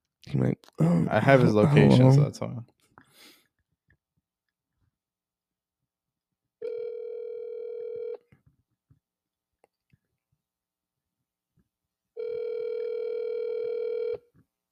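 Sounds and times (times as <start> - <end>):
speech: 0.3 - 2.8
person breathing: 3.0 - 3.5
phone ringback tones on speakerphone: 6.6 - 8.2, 12.2 - 14.2.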